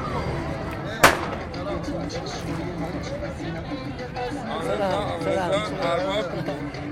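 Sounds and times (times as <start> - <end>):
crowd chatter at a traditional neighbourhood festival: 0.0 - 6.9
firecracker bang at a traditional neighbourhood festival: 1.0 - 1.9.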